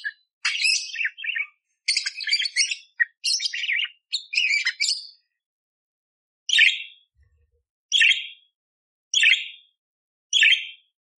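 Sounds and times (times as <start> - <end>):
budgerigar chirping and warbling: 0.0 - 5.1, 6.5 - 7.0.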